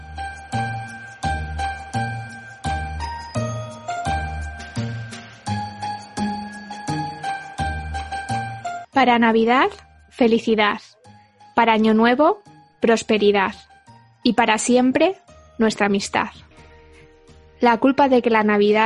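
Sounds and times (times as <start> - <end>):
bright jingling tinkling bells: 0.0 - 8.8
festive instrumental Christmas tune with bouncy beat: 0.0 - 14.2
speech: 9.0 - 10.9, 11.6 - 16.5, 17.6 - 18.8.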